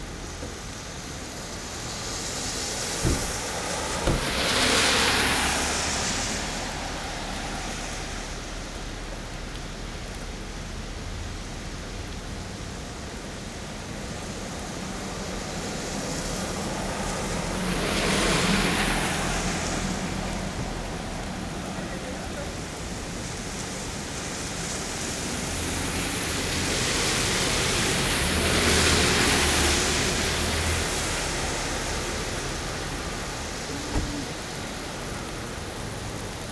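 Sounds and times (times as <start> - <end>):
cars hissing past on wet pavement: 0.0 - 36.5
brief knocks: 3.0 - 4.6, 33.9 - 34.2.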